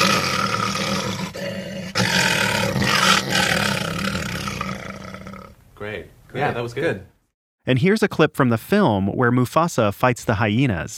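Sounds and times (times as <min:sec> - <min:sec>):
man imitating a lion roar in a sound booth: 0:00.0 - 0:05.6
speech: 0:05.9 - 0:10.9.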